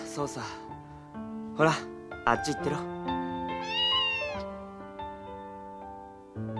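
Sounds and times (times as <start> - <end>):
speech: 0.2 - 0.7, 1.6 - 3.2
cat meowing: 3.6 - 4.5.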